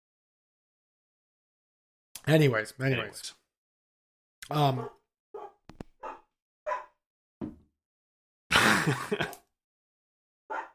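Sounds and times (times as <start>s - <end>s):
speech: 2.2s - 3.4s, 4.5s - 5.0s, 8.8s - 9.4s
dog barking: 4.7s - 7.0s, 10.5s - 10.7s
laughter: 8.5s - 9.4s.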